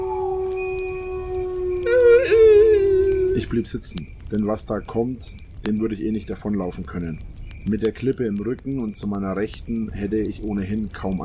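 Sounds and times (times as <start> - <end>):
wolf howling: 0.0 - 3.6
speech: 3.4 - 11.2.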